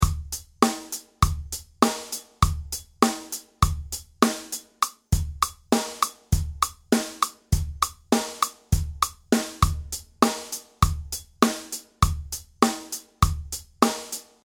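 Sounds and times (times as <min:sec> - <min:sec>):
rhythmic illusion pattern: 0:00.0 - 0:14.2.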